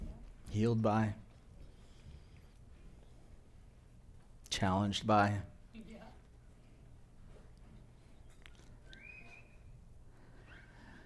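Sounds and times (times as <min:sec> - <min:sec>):
speech: 0:00.5 - 0:01.2, 0:04.6 - 0:06.1
microphone feedback whistle from a live mic during a church worship service: 0:08.9 - 0:09.8.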